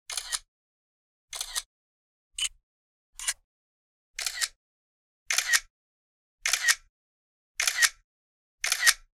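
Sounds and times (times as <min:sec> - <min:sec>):
camera shutter clicks: 0:00.1 - 0:00.5, 0:01.3 - 0:01.7, 0:04.2 - 0:04.6, 0:05.3 - 0:05.7, 0:06.4 - 0:06.8, 0:07.6 - 0:08.0, 0:08.6 - 0:09.1.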